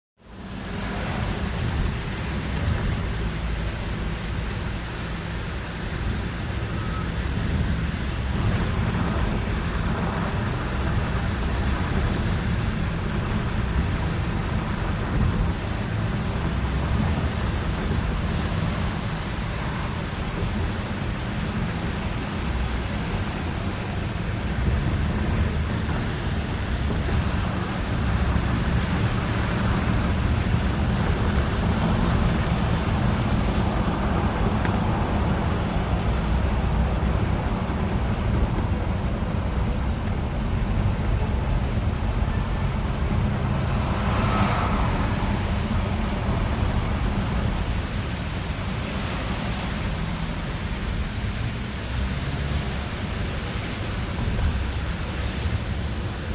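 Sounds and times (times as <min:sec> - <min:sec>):
car interior rumble driving fast on wet road: 0:00.2 - 0:56.3
truck passing by in same direction: 0:00.3 - 0:56.3.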